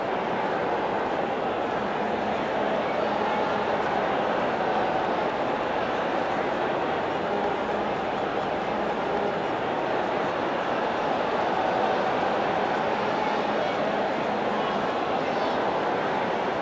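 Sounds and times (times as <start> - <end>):
people cheering in the Colosseum: 0.0 - 16.6.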